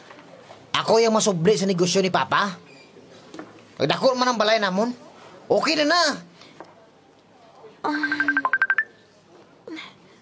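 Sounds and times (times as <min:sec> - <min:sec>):
speech: 0:00.8 - 0:02.7, 0:03.8 - 0:06.3, 0:07.8 - 0:08.2
cellphone ringing with bright electronic beeps: 0:07.9 - 0:09.0.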